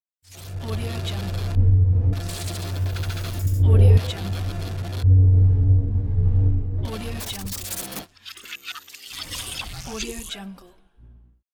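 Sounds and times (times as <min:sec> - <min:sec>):
sci-fi interface sound: 0:00.3 - 0:10.4.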